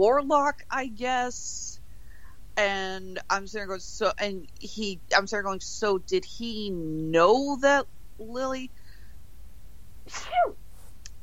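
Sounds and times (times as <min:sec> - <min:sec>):
speech: 0:00.0 - 0:01.7, 0:02.6 - 0:08.8, 0:10.1 - 0:10.6
sneeze: 0:10.1 - 0:10.6.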